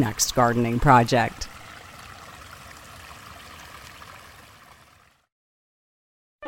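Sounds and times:
speech: 0.0s - 1.5s
babbling brook trickling and gurgling in a test garden: 0.0s - 5.2s.

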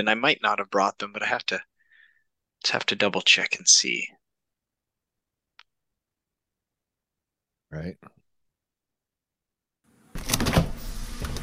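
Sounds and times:
speech: 0.0s - 1.7s, 2.6s - 4.2s, 7.7s - 8.2s
door opening: 10.1s - 11.4s.

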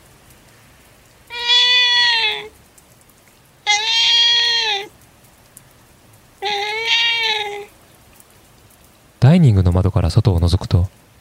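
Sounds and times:
light rain pattering on a chilly morning: 0.0s - 11.2s
soaking-wet kitten meowing on a planter outside a home: 1.3s - 2.5s, 3.7s - 4.9s, 6.4s - 7.7s
speech: 9.2s - 11.1s.

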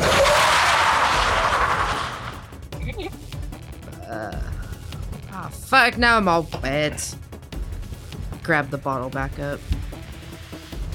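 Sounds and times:
car tires skidding under hard braking: 0.0s - 2.5s
speech: 5.7s - 7.2s, 8.5s - 9.7s.

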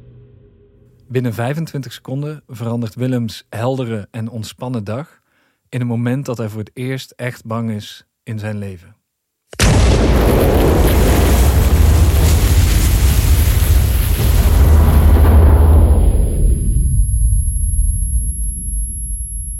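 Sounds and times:
speech: 1.1s - 9.0s
debris hitting buildings: 9.6s - 16.7s
bomb explosion: 9.6s - 18.2s.

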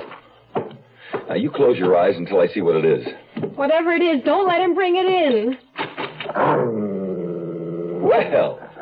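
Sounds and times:
speech: 1.3s - 5.6s, 8.1s - 8.6s
large dog growling: 6.3s - 8.7s.

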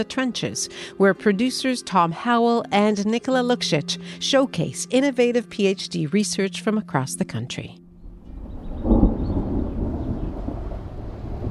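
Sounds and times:
speech: 0.0s - 7.8s
low rumble of thunder: 8.0s - 11.4s
steady rain: 8.6s - 11.4s.

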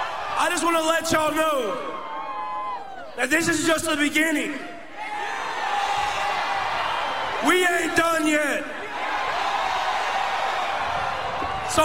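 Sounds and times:
large stadium crowd cheering and whooping: 0.0s - 3.2s, 4.9s - 11.8s
man speaking loudly over the crowd noise: 0.4s - 2.0s, 3.2s - 4.8s, 7.4s - 8.8s, 11.7s - 11.8s
speech: 0.4s - 2.1s, 3.2s - 4.7s, 7.4s - 8.8s.

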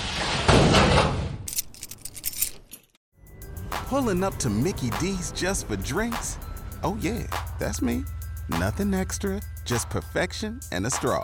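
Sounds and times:
metal storage locker door scraping shut: 0.0s - 1.5s
metallic jangling and clicks: 1.5s - 3.0s
speech: 3.9s - 11.2s.

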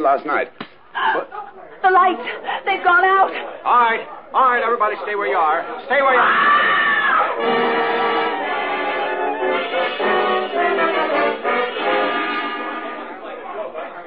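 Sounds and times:
speech: 0.0s - 7.7s
crowd of many voices shouting in a dark lobby: 5.9s - 13.8s
high scream in a dark lobby: 6.1s - 10.0s.

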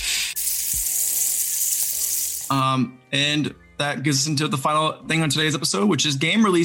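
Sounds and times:
food frying in a hot pan: 0.0s - 2.6s
speech: 2.5s - 6.6s.

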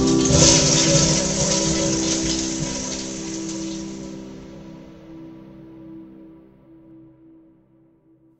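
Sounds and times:
toilet flushing with a rush of water: 0.0s - 4.8s.

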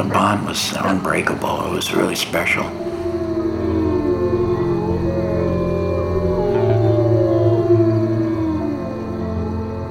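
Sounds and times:
speech: 0.0s - 2.9s
chorus of wolves howling together: 0.0s - 9.9s.

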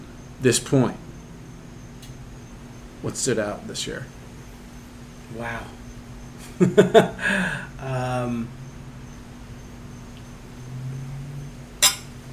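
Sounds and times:
speech: 0.4s - 1.0s, 3.0s - 4.2s, 5.3s - 5.8s, 6.6s - 8.6s
glasses clinking together in a toast: 11.8s - 12.2s.

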